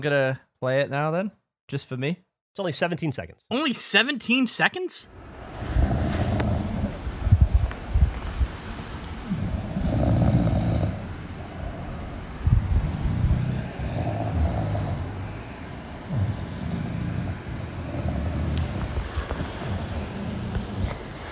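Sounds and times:
speech: 0:00.0 - 0:05.9
steady noise: 0:00.0 - 0:21.3
bulldog snoring: 0:05.6 - 0:07.0, 0:09.2 - 0:12.2, 0:12.8 - 0:21.3
woman snoring: 0:09.2 - 0:12.1, 0:13.2 - 0:20.8.

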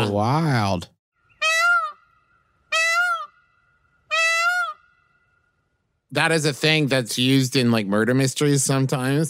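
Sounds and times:
speech: 0:00.0 - 0:01.0, 0:06.1 - 0:09.2
peacock calling: 0:01.2 - 0:05.8.

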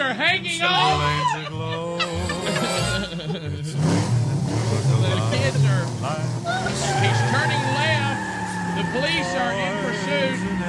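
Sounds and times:
laughter: 0:00.0 - 0:10.6
voices talking loudly: 0:00.0 - 0:10.6
tractor engine rumbling past in a Christmas parade: 0:03.9 - 0:10.6.

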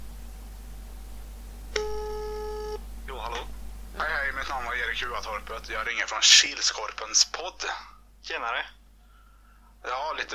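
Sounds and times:
low constant hum: 0:00.0 - 0:10.3
telephone ringing tone: 0:01.8 - 0:02.8
speech: 0:04.8 - 0:08.8, 0:09.8 - 0:10.3.

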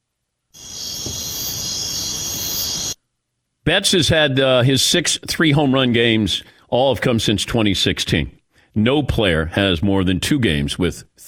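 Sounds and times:
cricket chirping: 0:00.6 - 0:03.0
speech: 0:03.7 - 0:11.2.

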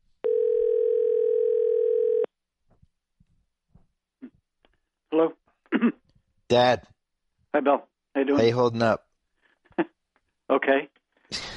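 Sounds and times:
telephone dial tone placing a call: 0:00.2 - 0:02.3
speech: 0:05.2 - 0:05.4, 0:06.5 - 0:06.9, 0:07.6 - 0:09.0, 0:10.6 - 0:11.0.

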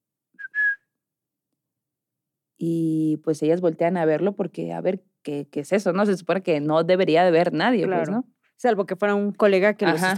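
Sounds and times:
person whistling two notes: 0:00.4 - 0:01.0
speech: 0:02.6 - 0:10.1.

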